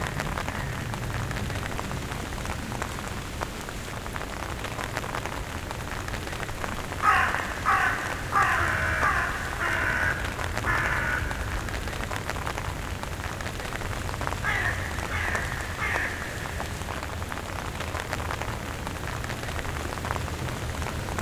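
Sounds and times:
rain falling on a surface: 0.0s - 21.2s
common raven croaking: 6.2s - 17.9s.

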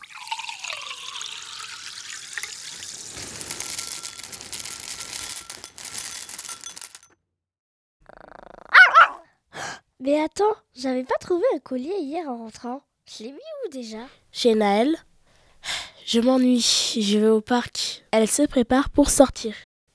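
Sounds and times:
steady hiss like running water: 1.0s - 6.1s
dog growling softly: 8.0s - 9.2s
dog barking sharply: 8.7s - 9.2s
speech: 10.0s - 15.1s, 16.1s - 19.7s.

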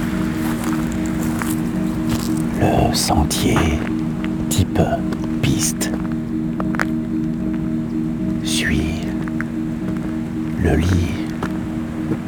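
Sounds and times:
flowing stream: 0.0s - 12.2s
low steady hum: 0.0s - 12.2s
brief indistinct vocal-like sounds: 2.2s - 6.1s, 8.4s - 9.4s, 10.0s - 12.2s
speech: 2.6s - 6.0s, 10.6s - 11.2s.

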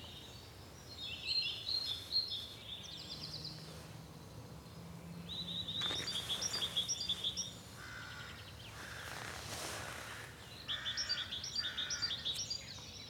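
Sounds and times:
red-billed leiothrix singing: 0.0s - 9.0s, 10.4s - 13.0s
low steady outdoor noise: 0.0s - 13.0s.

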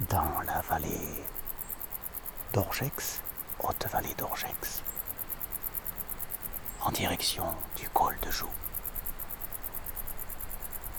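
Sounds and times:
crickets and grasshoppers chirping in a high mountain valley: 0.0s - 10.9s
speech: 0.1s - 1.4s, 2.5s - 4.9s, 6.8s - 8.6s.

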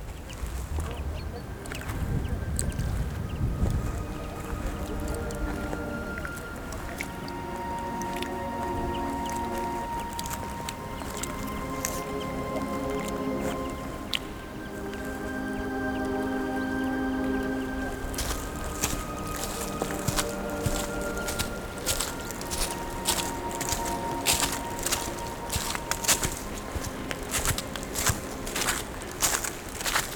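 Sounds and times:
faint voices of hikers: 0.0s - 30.1s
footsteps on a wet path of dead leaves on a descent: 0.0s - 30.1s
outdoor ambience: 0.0s - 30.1s.

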